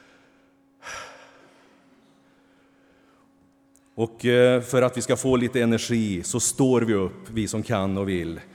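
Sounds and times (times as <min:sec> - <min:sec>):
speaker and gathered listeners taking a deep breath together: 0:00.0 - 0:03.9
speech: 0:04.0 - 0:08.5.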